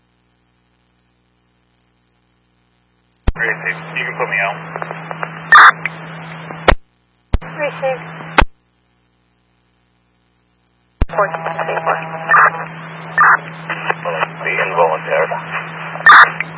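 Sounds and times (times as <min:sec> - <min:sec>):
steady electrical hum: 0:00.0 - 0:16.5
overlapping police two-way radio transmissions: 0:03.4 - 0:05.8, 0:11.1 - 0:16.4
police two-way radio click: 0:04.7 - 0:07.5, 0:08.1 - 0:08.6, 0:11.0 - 0:16.5.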